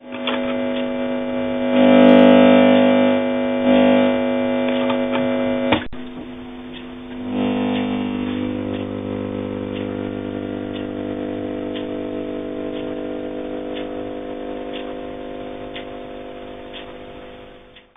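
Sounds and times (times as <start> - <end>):
tube humming: 0.0 - 17.9.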